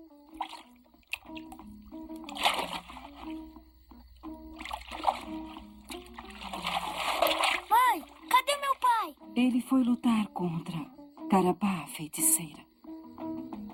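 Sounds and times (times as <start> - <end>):
soft melodic music: 0.0 - 13.7
water splashing as a child washes: 0.3 - 3.6, 4.2 - 9.2
speech: 9.4 - 12.7.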